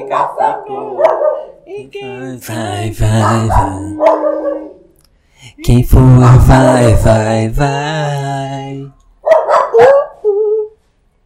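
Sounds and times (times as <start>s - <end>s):
dog barking: 0.0s - 1.6s, 3.0s - 4.9s, 9.2s - 10.2s
speech: 0.1s - 4.6s, 5.4s - 9.0s
dog whining howl: 9.7s - 10.8s.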